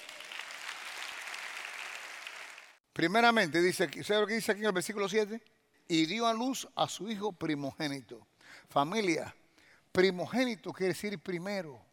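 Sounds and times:
church audience applauding: 0:00.0 - 0:02.8
speech: 0:03.0 - 0:11.9.

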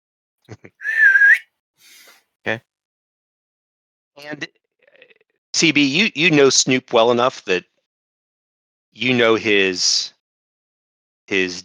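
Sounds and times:
speech: 0:00.5 - 0:01.0, 0:01.8 - 0:02.7, 0:04.2 - 0:04.6, 0:05.6 - 0:07.7, 0:09.0 - 0:10.1, 0:11.3 - 0:11.6
whistle used as a signal: 0:00.8 - 0:02.1.

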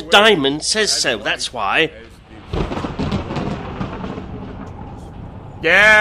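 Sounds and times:
speech: 0:00.1 - 0:02.1, 0:05.6 - 0:06.0
rolling thunder sound effect: 0:02.1 - 0:06.0.

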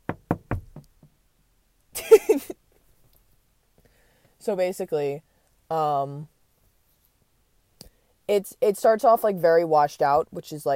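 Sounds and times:
knocks on a car window: 0:00.0 - 0:01.1
speech: 0:04.4 - 0:06.3, 0:08.3 - 0:10.7.

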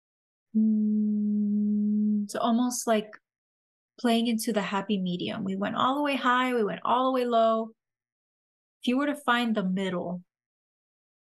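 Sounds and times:
speech: 0:00.5 - 0:00.8, 0:02.3 - 0:03.2, 0:04.0 - 0:07.8, 0:08.8 - 0:10.3
person humming at a mid-low pitch: 0:00.6 - 0:02.3.

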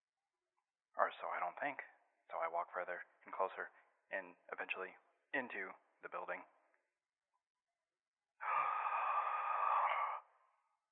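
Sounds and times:
speech: 0:01.0 - 0:06.6
person gasping for breath: 0:08.4 - 0:10.4.

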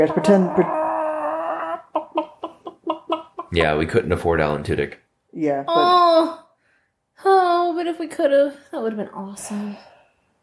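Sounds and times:
speech: 0:00.0 - 0:00.9, 0:03.5 - 0:06.4, 0:07.2 - 0:09.9
people imitating chicken squawking and clucking: 0:00.0 - 0:03.9.

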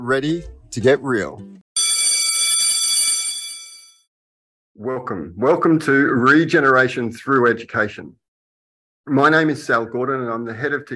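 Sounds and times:
speech: 0:00.0 - 0:01.6, 0:04.8 - 0:08.2, 0:09.0 - 0:10.9
electric school bell ringing: 0:01.8 - 0:04.1.

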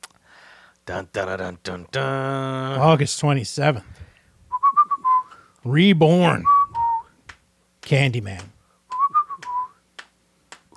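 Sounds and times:
speech: 0:00.9 - 0:04.0, 0:05.6 - 0:06.6, 0:07.9 - 0:08.5
person whistling a film score melody: 0:04.5 - 0:05.4, 0:06.4 - 0:07.1, 0:08.9 - 0:09.8.

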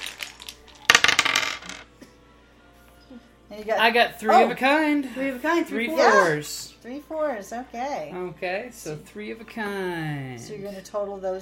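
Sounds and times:
dice clattering across a hard surface: 0:00.0 - 0:01.9
speech: 0:03.5 - 0:11.4.

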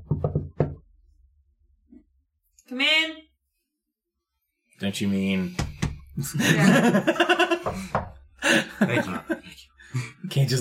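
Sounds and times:
knocking on a door: 0:00.0 - 0:00.8, 0:05.6 - 0:06.0, 0:07.5 - 0:08.2
speech: 0:02.7 - 0:03.3, 0:04.8 - 0:10.6
laughter: 0:06.2 - 0:10.2.

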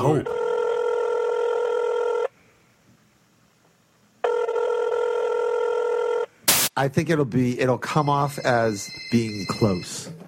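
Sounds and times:
speech: 0:00.0 - 0:00.4, 0:06.8 - 0:10.2
telephone ringing in electronic bursts: 0:00.0 - 0:02.3, 0:04.2 - 0:06.3, 0:07.8 - 0:10.2.

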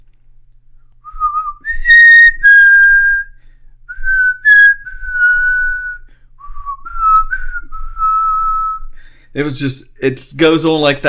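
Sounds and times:
person whistling a piano piece melody: 0:01.0 - 0:09.0
speech: 0:09.4 - 0:11.0.

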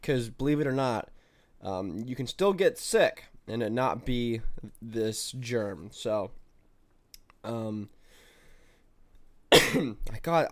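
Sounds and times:
speech: 0:00.0 - 0:06.4, 0:07.4 - 0:08.0, 0:09.7 - 0:10.5
man coughing while recovering from a feverish illness: 0:09.5 - 0:10.1.

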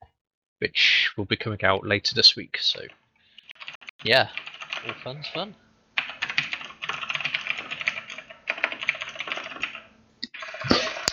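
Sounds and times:
speech: 0:00.6 - 0:03.0, 0:04.0 - 0:05.6
fast typing on a computer keyboard: 0:02.8 - 0:05.4, 0:06.0 - 0:11.1.

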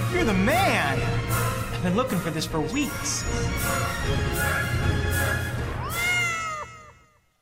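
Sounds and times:
speech: 0:00.2 - 0:01.2, 0:01.8 - 0:05.5
cat meowing: 0:05.8 - 0:07.2.

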